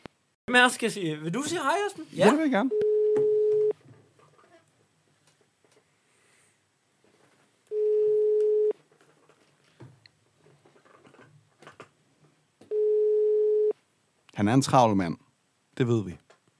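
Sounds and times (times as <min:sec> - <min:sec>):
speech: 0:00.5 - 0:02.9, 0:14.5 - 0:15.2, 0:15.8 - 0:16.2
quiet rustling: 0:01.9 - 0:12.6
telephone ringback tone while calling a man: 0:02.7 - 0:03.8, 0:07.7 - 0:08.8, 0:12.7 - 0:13.8.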